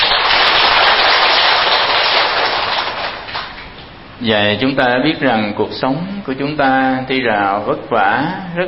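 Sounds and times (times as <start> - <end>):
crowd applauding: 0.0 - 3.6
speech: 4.2 - 8.6.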